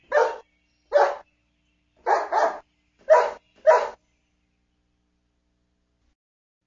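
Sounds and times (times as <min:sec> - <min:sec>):
dog barking: 0:00.0 - 0:01.2, 0:02.0 - 0:04.0.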